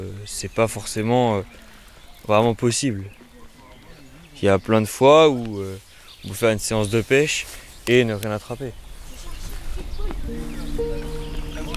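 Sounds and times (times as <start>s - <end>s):
speech: 0.0s - 3.2s, 4.4s - 8.8s
geese calling across the water: 10.3s - 11.7s.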